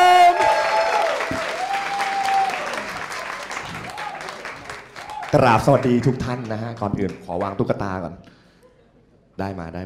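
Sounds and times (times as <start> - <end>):
crowd applauding: 0.1 - 7.6
speech: 5.3 - 8.4, 9.4 - 9.8.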